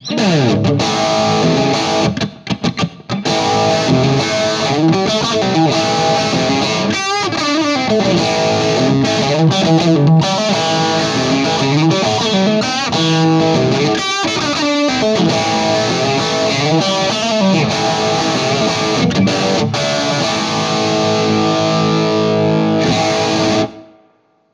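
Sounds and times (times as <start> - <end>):
70s rock lead guitar: 0.0 - 24.0.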